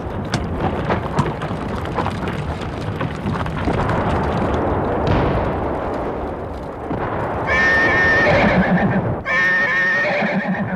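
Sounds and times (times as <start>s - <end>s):
rough noisy commotion: 0.0s - 10.4s
frightened horse neighing in shrill quavering whinnies: 7.5s - 10.7s.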